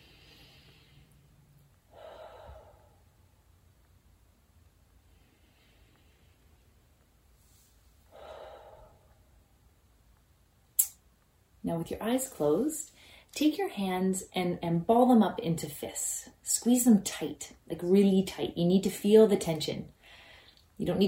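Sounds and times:
deep breaths in through the nose and out through the mouth: 0.0 - 3.2, 5.0 - 9.4, 12.9 - 13.4, 20.0 - 20.7
speech: 11.7 - 20.0, 20.8 - 21.0.

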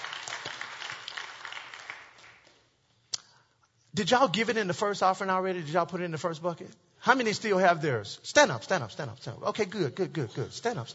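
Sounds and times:
church congregation clapping hands: 0.0 - 2.8
speech: 3.9 - 10.9.

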